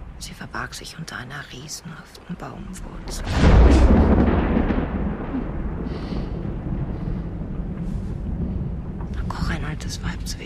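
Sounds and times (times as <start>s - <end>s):
speech: 0.2s - 4.4s, 9.9s - 10.4s
thunder rumbling from a thunderstorm: 2.7s - 10.4s.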